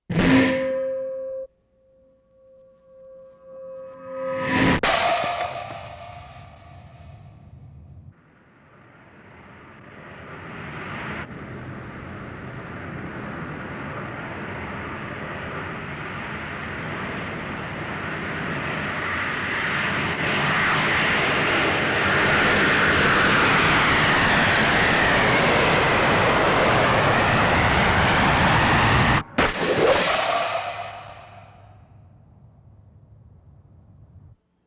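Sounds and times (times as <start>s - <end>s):
plane: 0.0s - 34.4s.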